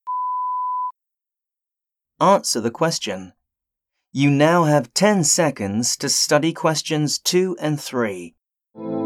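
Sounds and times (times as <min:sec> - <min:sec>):
electronic beep signalling time to answer a listening-test question: 0:00.1 - 0:00.9
speech: 0:02.2 - 0:03.4, 0:04.1 - 0:08.9.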